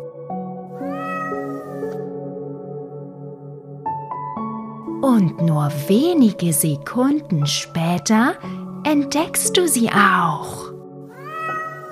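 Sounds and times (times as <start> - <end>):
large long-haired black cat with reddish-brown patches meowing: 0.8 - 2.1, 11.1 - 11.9
speech: 5.1 - 10.7.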